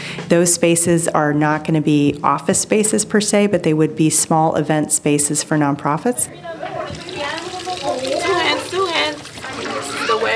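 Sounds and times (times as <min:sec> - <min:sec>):
speech: 0:00.3 - 0:07.4
children's voices at a preschool: 0:06.1 - 0:10.3
running water from a tap as children wash hands: 0:06.3 - 0:10.3.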